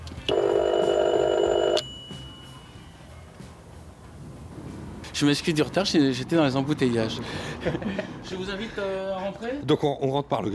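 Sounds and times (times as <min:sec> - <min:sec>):
telephone ringing on an outgoing call: 0:00.2 - 0:02.7
speech: 0:05.2 - 0:10.5.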